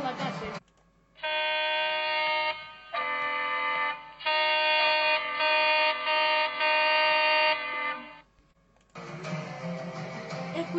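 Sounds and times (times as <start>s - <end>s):
person talking: 0.0s - 0.6s
car horns honking from passing cars: 1.2s - 8.2s.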